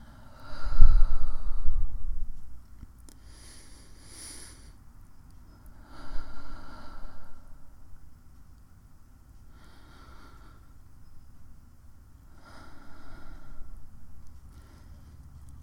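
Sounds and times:
slow deep breathing inhaling and exhaling: 0.0s - 2.6s, 3.2s - 4.8s, 5.6s - 8.0s, 9.4s - 10.9s, 12.3s - 15.5s.

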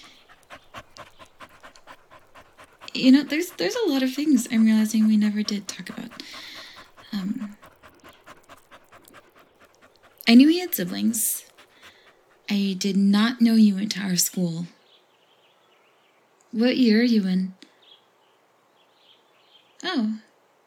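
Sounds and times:
dog panting: 0.0s - 13.1s
speech: 3.0s - 6.5s, 10.3s - 11.4s, 12.5s - 14.8s, 16.6s - 17.6s.

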